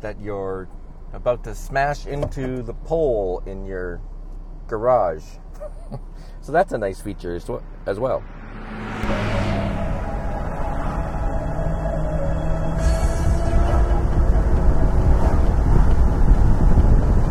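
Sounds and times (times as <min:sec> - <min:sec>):
speech: 0:00.0 - 0:04.1, 0:04.7 - 0:09.2
road and wind noise of a car cruising at 60 miles per hour: 0:00.0 - 0:17.2
low engine drone of a car in fourth gear: 0:05.3 - 0:17.2.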